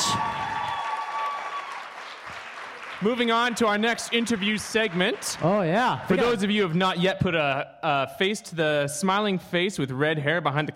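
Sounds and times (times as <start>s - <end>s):
audience applause: 0.0s - 6.4s
speech: 3.0s - 10.7s.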